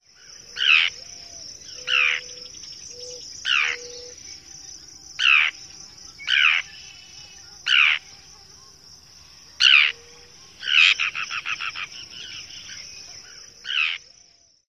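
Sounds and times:
typical calls: 0:00.5 - 0:04.3, 0:05.2 - 0:08.5, 0:09.5 - 0:14.1.

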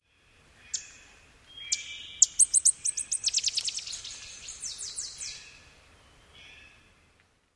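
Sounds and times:
bird flight song: 0:01.6 - 0:05.6.

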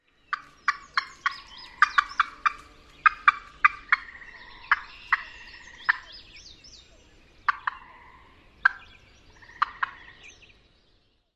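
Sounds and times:
female alarm calls: 0:00.3 - 0:06.3, 0:07.5 - 0:10.3.

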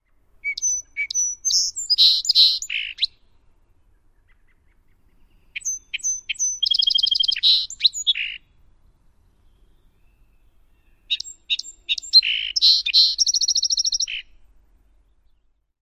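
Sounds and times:
Song Sparrow singing: 0:00.0 - 0:15.7.

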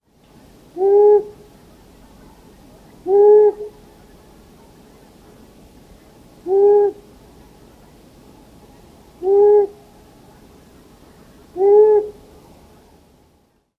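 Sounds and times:
Long-eared Owl hooting: 0:00.7 - 0:01.5, 0:03.0 - 0:03.9, 0:06.4 - 0:07.1, 0:09.2 - 0:10.0, 0:11.1 - 0:12.3.

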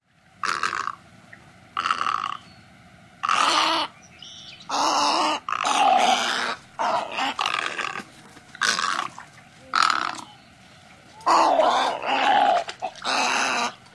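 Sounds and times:
snowy egret gagging croaks: 0:00.4 - 0:01.0, 0:01.8 - 0:02.4, 0:04.7 - 0:10.3, 0:11.2 - 0:13.8.

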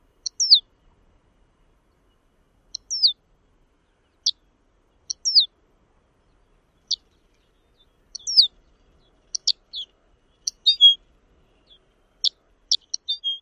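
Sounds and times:
Lapland Longspur calling: 0:00.2 - 0:00.6, 0:02.7 - 0:03.2, 0:05.1 - 0:05.5, 0:08.1 - 0:13.4.

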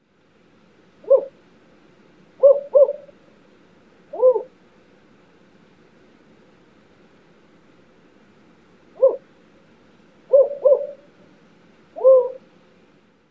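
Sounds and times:
Spotted Owl song: 0:01.0 - 0:01.4, 0:02.4 - 0:03.2, 0:04.1 - 0:04.6, 0:08.9 - 0:09.3, 0:10.3 - 0:11.2, 0:11.9 - 0:12.5.

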